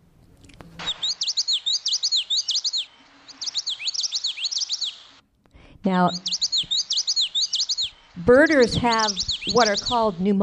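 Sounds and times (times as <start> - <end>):
yellow-throated warbler song: 0.8 - 5.1, 6.0 - 10.4
speech: 5.8 - 6.3, 8.2 - 10.4.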